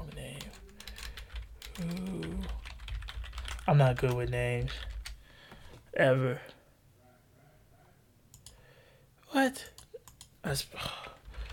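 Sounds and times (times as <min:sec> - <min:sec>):
typing on a computer keyboard: 0:00.0 - 0:05.2, 0:09.6 - 0:10.3
low hum: 0:00.0 - 0:11.5
speech: 0:01.8 - 0:02.1, 0:03.7 - 0:04.9, 0:06.0 - 0:06.5, 0:10.5 - 0:11.0.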